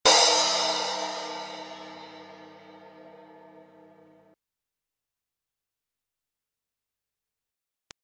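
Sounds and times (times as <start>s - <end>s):
cymbal: 0.0s - 4.3s.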